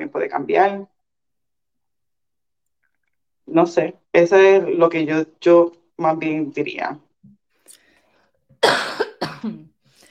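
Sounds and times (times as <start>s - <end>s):
speech: 0.1s - 0.9s, 3.5s - 7.0s, 9.4s - 9.7s
faint throat clearing: 8.6s - 9.7s
harsh coughs: 8.6s - 9.8s.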